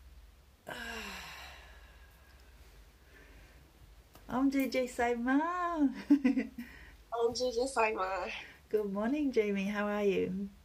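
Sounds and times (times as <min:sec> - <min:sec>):
low steady hum: 0:00.0 - 0:10.6
person yawning while stretching: 0:00.7 - 0:02.0
speech: 0:04.3 - 0:10.6.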